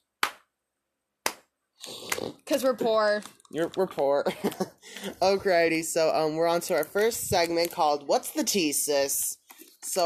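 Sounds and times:
slow sarcastic hand claps: 0.2s - 0.5s, 1.2s - 1.5s
speech: 1.8s - 10.0s.

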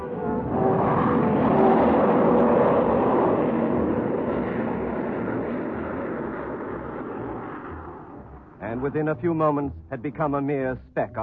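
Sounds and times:
huge freighter spacecraft passing overhead: 0.0s - 10.6s
speech: 8.8s - 11.2s.

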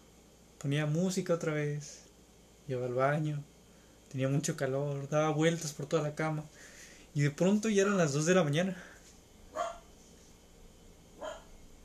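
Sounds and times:
speech: 0.6s - 2.0s, 2.7s - 3.5s, 4.1s - 8.9s
dog barking: 9.5s - 9.9s, 11.2s - 11.6s.

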